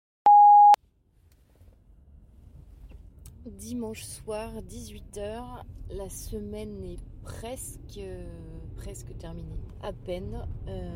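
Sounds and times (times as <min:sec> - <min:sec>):
electronic voicemail beep: 0:00.3 - 0:00.8
speech: 0:03.5 - 0:10.9.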